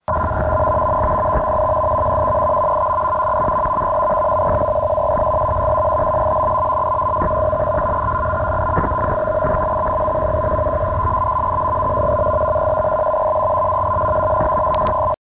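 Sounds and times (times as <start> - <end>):
ARQ-M digital mode radio signal: 0.0 - 15.2.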